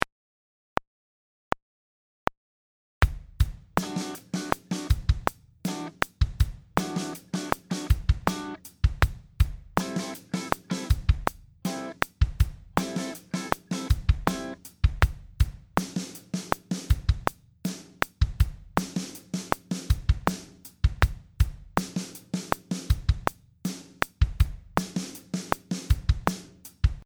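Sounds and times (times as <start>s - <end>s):
R&B groove: 3.0s - 17.4s, 18.0s - 27.0s.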